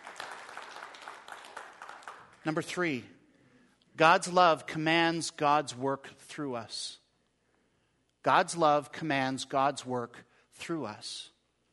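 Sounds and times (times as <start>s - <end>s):
crowd applauding: 0.0s - 2.6s
speech: 2.4s - 3.2s, 4.0s - 7.0s, 8.2s - 11.3s.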